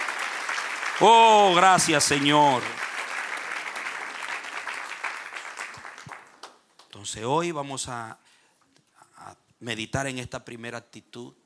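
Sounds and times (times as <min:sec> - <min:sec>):
crowd applauding: 0:00.0 - 0:06.9
speech: 0:01.0 - 0:02.8, 0:07.0 - 0:08.2, 0:09.2 - 0:11.4.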